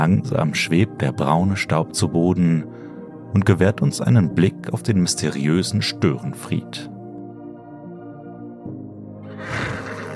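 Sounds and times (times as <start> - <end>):
speech: 0.0 - 6.9
horse whinnying: 9.3 - 10.1
horse snorting: 9.4 - 10.1.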